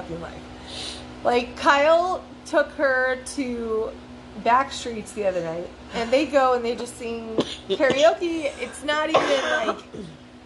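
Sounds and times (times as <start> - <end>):
speech: 0.1 - 10.2
short harsh coughs: 7.4 - 8.1, 9.1 - 10.2
rough throat clearing: 7.4 - 8.2, 9.1 - 10.2.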